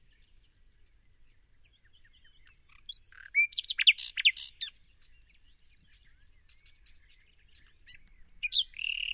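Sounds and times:
common nightingale Luscinia megarhynchos singing sweeping notes: 0:00.0 - 0:09.1.

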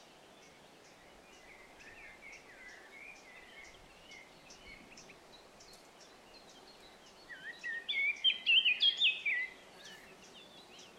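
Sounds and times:
Eurasian blackcap song, Sylvia atricapilla: 0:00.0 - 0:10.9.

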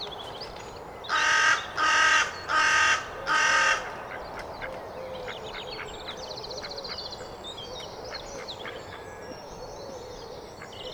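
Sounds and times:
carrion crow Corvus corone cawing hoarsely: 0:01.1 - 0:04.0.

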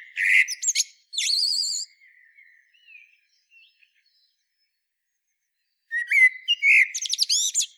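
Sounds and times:
common blackbird Turdus merula song phrase: 0:00.0 - 0:03.0, 0:05.9 - 0:07.7.

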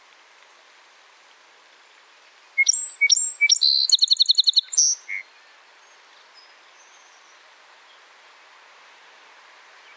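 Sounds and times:
song sparrow Melospiza melodia singing in Quebec: 0:02.6 - 0:05.1.

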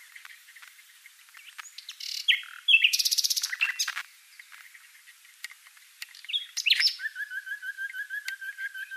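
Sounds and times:
common nightingale song of buzzy trills, clicks and whistled notes: 0:00.0 - 0:08.9.

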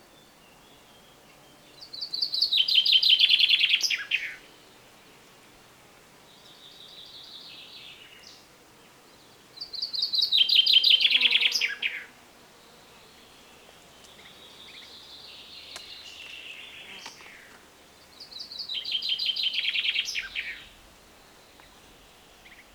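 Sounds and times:
common chaffinch Fringilla coelebs singing: 0:00.2 - 0:04.5, 0:09.6 - 0:12.0, 0:13.0 - 0:22.7.

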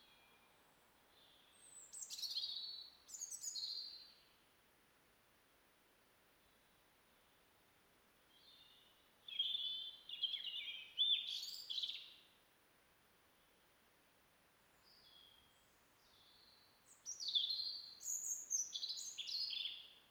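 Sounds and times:
European robin singing, Erithacus rubecula: 0:01.2 - 0:04.2, 0:08.3 - 0:12.2, 0:14.8 - 0:20.0.

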